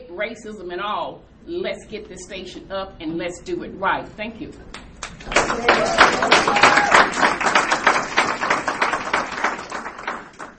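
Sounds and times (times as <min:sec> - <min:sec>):
speech: 0:00.2 - 0:07.7
audience applause: 0:05.0 - 0:10.5.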